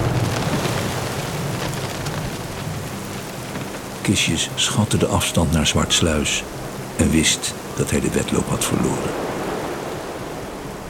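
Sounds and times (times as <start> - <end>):
low rumbling thunderstorm: 0.0 - 3.8
heavy rain battering a ship: 0.0 - 10.8
speech: 4.1 - 9.3.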